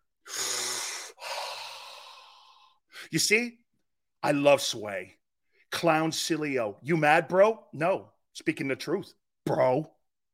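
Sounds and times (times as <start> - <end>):
deep forceful breathing: 0.2 - 3.1
speech: 3.1 - 3.6, 4.2 - 10.0.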